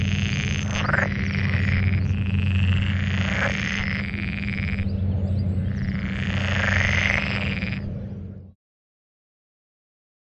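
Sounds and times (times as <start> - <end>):
pool frogs croaking in chorus on a moor: 0.0 - 8.0.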